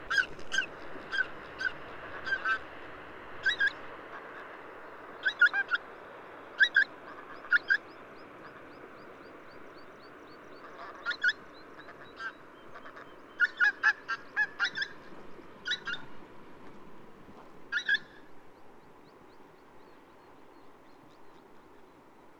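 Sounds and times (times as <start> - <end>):
pink-footed goose honking: 0.0 - 2.7, 6.6 - 8.8, 10.5 - 16.0
pink-footed goose squealing: 0.1 - 2.6, 3.4 - 3.8, 5.2 - 5.8, 6.6 - 7.8, 10.6 - 15.0, 15.7 - 16.0, 17.7 - 18.2.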